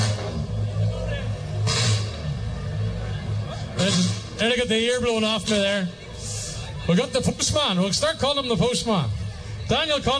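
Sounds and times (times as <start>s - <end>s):
rally car revving hard and accelerating away: 0.0s - 6.0s
speech: 3.9s - 6.0s, 6.9s - 10.1s.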